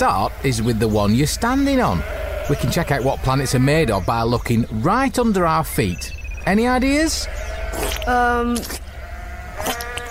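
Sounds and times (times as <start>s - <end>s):
speech: 0.0s - 8.8s
open hiss and rumble of an outdoor field: 0.0s - 10.0s
sheep bleating in a field: 1.5s - 4.1s, 7.0s - 10.0s.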